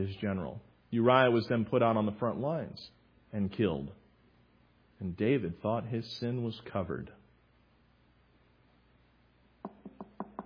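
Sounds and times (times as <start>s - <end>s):
speech: 0.0s - 4.0s, 5.0s - 7.2s
firm hollow knocks on a door: 9.6s - 10.4s.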